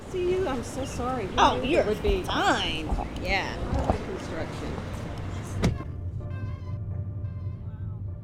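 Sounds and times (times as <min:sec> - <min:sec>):
low car interior rumble: 0:00.0 - 0:08.2
outdoor traffic noise: 0:00.0 - 0:08.2
speech: 0:00.1 - 0:05.0
car door shutting: 0:05.2 - 0:06.7.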